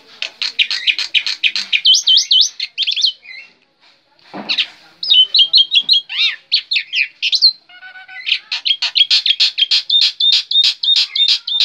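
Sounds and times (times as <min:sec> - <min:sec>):
black-winged myna rasp: 0:00.0 - 0:02.7, 0:08.3 - 0:11.6
black-winged myna singing: 0:00.0 - 0:03.6, 0:04.5 - 0:11.6.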